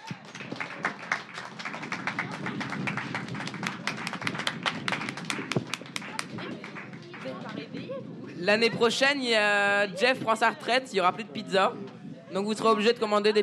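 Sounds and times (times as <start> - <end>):
crowd applauding: 0.0 - 7.7
faint voices murmuring: 0.0 - 13.4
speech: 8.5 - 13.4.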